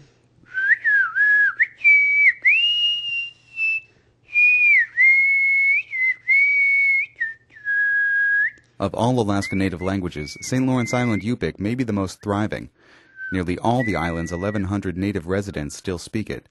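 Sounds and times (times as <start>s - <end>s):
person whistling a slow church hymn: 0.5s - 8.6s, 9.3s - 11.4s, 12.2s - 14.8s
speech: 8.8s - 16.4s.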